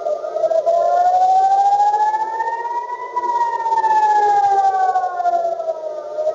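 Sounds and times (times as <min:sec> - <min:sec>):
air raid siren wailing in central Israel during a missile attack: 0:00.0 - 0:06.3.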